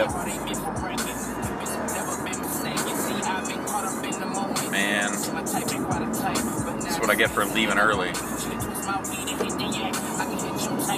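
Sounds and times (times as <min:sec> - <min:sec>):
other vehicles droning: 0:00.0 - 0:10.9
road noise from inside a moving car: 0:00.0 - 0:10.9
speech: 0:07.1 - 0:08.3.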